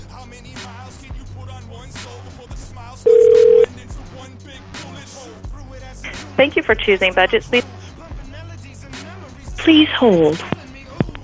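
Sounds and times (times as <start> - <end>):
speech: 0.3 - 7.8, 9.6 - 10.6
telephone dial tone: 3.1 - 3.7
faint noise: 6.0 - 7.8, 9.6 - 11.2.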